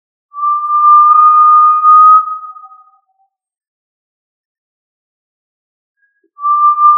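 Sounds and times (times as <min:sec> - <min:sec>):
Tinamou whistle: 0:00.4 - 0:03.0, 0:06.4 - 0:06.9.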